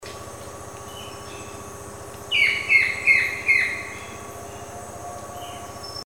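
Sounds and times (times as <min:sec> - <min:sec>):
chestnut woodpecker call: 0:00.8 - 0:01.7, 0:02.3 - 0:06.0.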